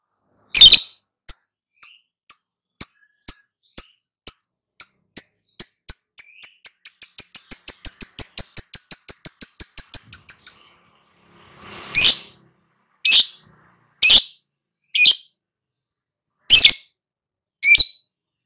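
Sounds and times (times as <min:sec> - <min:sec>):
lovebird singing with high piercing chirps and rapid continuous trill: 0:00.5 - 0:10.9, 0:11.9 - 0:12.4, 0:13.0 - 0:15.4, 0:16.4 - 0:17.0, 0:17.6 - 0:18.2.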